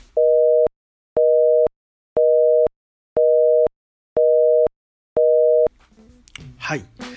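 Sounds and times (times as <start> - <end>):
American telephone busy signal beeps: 0.2 - 5.7
speech: 6.7 - 7.0.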